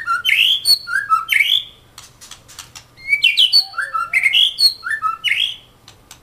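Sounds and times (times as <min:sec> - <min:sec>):
Oriental magpie-robin whistled song: 0:00.0 - 0:01.8, 0:03.0 - 0:05.8.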